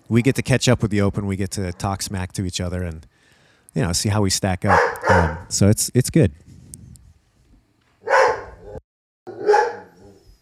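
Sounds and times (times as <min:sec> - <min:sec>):
speech: 0:00.1 - 0:06.5
puppies barking: 0:04.6 - 0:05.5, 0:08.0 - 0:10.2.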